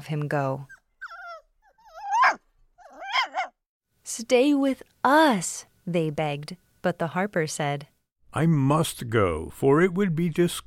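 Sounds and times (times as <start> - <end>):
speech: 0.0 - 0.8, 4.1 - 10.6
small brown dog whimpering: 0.7 - 3.6
small brown dog yappy barking: 2.0 - 3.6.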